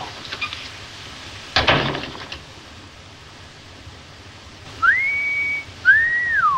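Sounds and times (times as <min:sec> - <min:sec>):
rustling thump: 0:01.5 - 0:02.4
man giving a two-part admiring whistle at a woman: 0:04.8 - 0:06.5.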